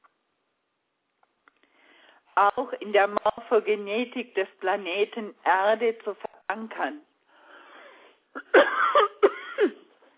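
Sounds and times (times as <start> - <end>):
speech: 2.4 - 7.1
woman coughing in harsh hacking bursts: 8.4 - 10.0.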